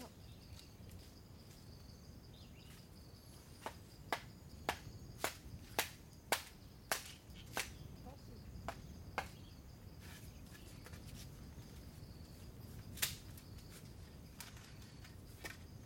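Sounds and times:
faint high insect whine: 0.0s - 15.8s
bamboo being split, hacked and shaved in Chiang Mai, Thailand: 3.6s - 7.8s, 8.6s - 9.4s, 13.0s - 13.4s, 15.4s - 15.6s.

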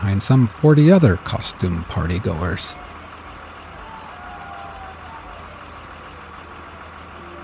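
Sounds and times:
large party bus engine idling outside a bar: 0.0s - 7.4s
speech: 0.1s - 2.9s.

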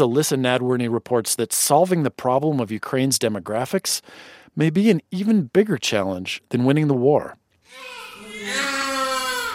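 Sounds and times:
speech: 0.0s - 8.7s
newborn baby crying in a hospital hallway: 7.7s - 9.5s.

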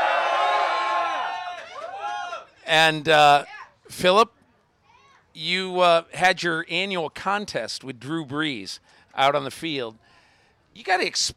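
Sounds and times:
crowd of fans cheering and whooping outdoors at a Chargers training camp in California: 0.0s - 2.5s
speech: 2.7s - 4.4s, 5.4s - 10.1s, 10.8s - 11.3s.

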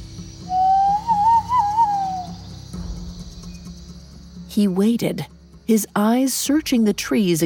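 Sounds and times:
person whistling a call into the mist: 0.5s - 2.4s
speech: 4.6s - 7.4s.

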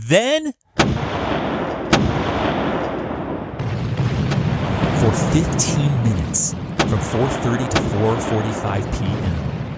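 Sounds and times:
speech: 0.1s - 1.4s, 5.1s - 9.5s
warship cannon firing broadsides in a naval engagement: 0.8s - 9.7s.

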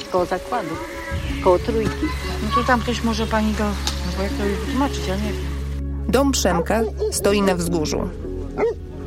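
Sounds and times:
speech: 0.1s - 5.5s, 6.1s - 8.8s
large dog giving higher whining yelps: 6.6s - 7.2s, 8.6s - 8.8s
large dog barking while running about a yard: 8.6s - 8.8s.

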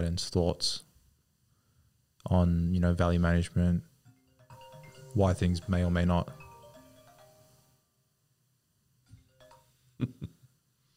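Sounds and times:
speech: 0.0s - 0.9s, 2.2s - 3.9s, 5.2s - 6.4s
phone ringtone melody: 4.1s - 8.0s, 9.1s - 10.0s.

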